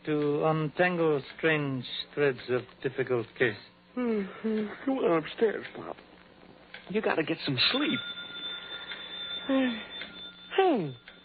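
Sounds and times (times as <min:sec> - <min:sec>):
speech: 0:00.0 - 0:06.1, 0:06.9 - 0:08.2, 0:09.5 - 0:10.0, 0:10.6 - 0:11.0
telephone ringing with a harsh buzzy metallic tone: 0:07.6 - 0:11.2.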